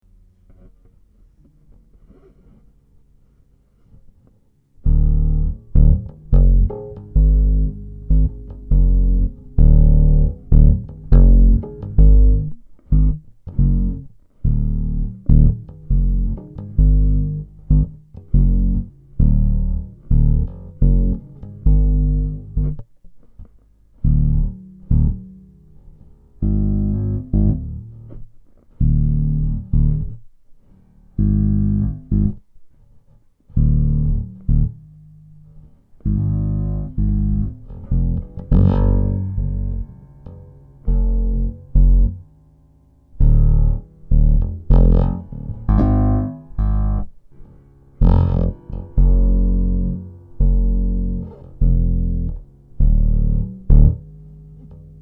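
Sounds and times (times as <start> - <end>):
Ibanez Gio four-string bass guitar: 0.0 - 55.0.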